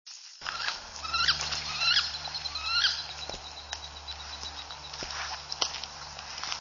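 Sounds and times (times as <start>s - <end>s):
wooden duck calls: 0.4s - 5.5s.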